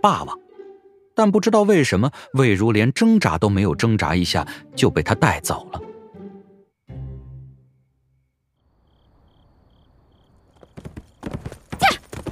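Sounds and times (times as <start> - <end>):
speech: 0.0 - 0.4, 1.2 - 5.9
peach-blossom horse hooves clip-clopping while being ridden: 10.5 - 12.3.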